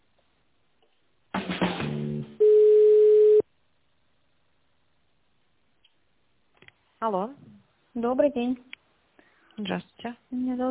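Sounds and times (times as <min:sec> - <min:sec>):
telephone line tones while a call is being transferred: 0:02.4 - 0:03.4
speech: 0:07.0 - 0:08.8, 0:09.6 - 0:10.7.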